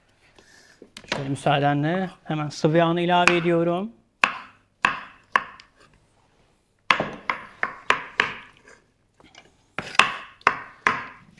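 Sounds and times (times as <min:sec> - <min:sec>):
speech: 0:01.2 - 0:04.0
knife chopping chicken on a cutting board: 0:04.2 - 0:05.6, 0:06.9 - 0:08.6, 0:09.8 - 0:11.2.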